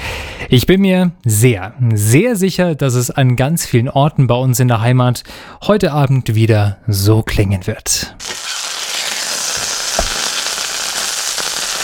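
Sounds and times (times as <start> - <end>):
speech: 0.4 - 8.4
barbecue grill being fired up, crackling and sizzling: 8.2 - 11.8
loud snap from a barbecue grill: 9.6 - 10.4.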